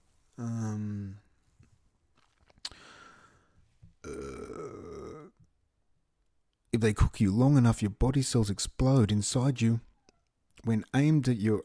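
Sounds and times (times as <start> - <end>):
rustling: 1.4 - 2.7
burping: 4.0 - 5.5
speech: 6.8 - 9.9, 10.6 - 11.6.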